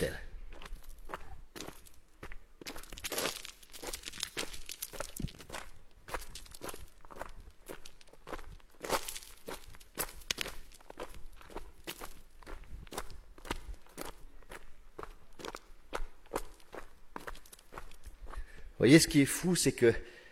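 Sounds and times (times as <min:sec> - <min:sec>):
footsteps crunching across loose gravel: 0:00.0 - 0:18.4
tiny pebbles skittering: 0:02.7 - 0:12.2
speech: 0:18.8 - 0:20.1.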